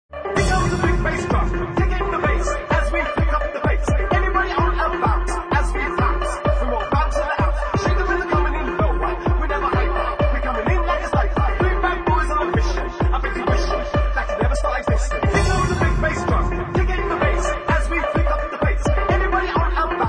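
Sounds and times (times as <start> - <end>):
big bass drum: 0.3 - 20.0.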